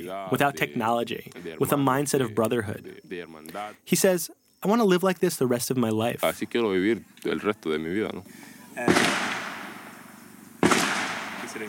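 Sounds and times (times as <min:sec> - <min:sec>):
speech: 0:00.0 - 0:09.3
gunshots: 0:08.8 - 0:11.6.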